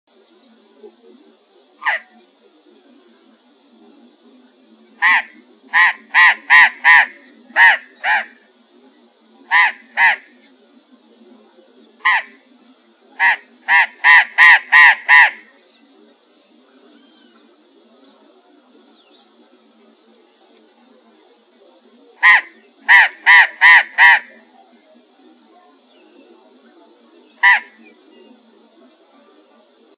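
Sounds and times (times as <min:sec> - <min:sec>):
Burrowing Parrot Cyanoliseus patagonus calls: 0:01.8 - 0:02.2, 0:05.0 - 0:08.4, 0:09.5 - 0:10.3, 0:12.0 - 0:12.4, 0:13.2 - 0:15.5, 0:22.2 - 0:24.4, 0:27.4 - 0:27.9.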